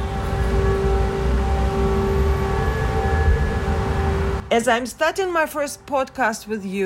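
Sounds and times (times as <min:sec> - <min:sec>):
air raid siren wailing in Odesa Ukraine during the Russia-Ukraine war: 0:00.0 - 0:04.5
speech: 0:04.6 - 0:06.8.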